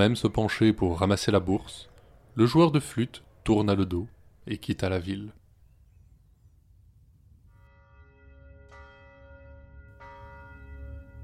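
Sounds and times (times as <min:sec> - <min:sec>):
speech: 0:00.0 - 0:05.4
church bell tolling midnight: 0:07.5 - 0:11.2.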